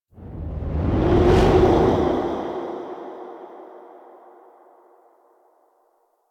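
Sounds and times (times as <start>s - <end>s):
transition whoosh: 0.1s - 3.8s.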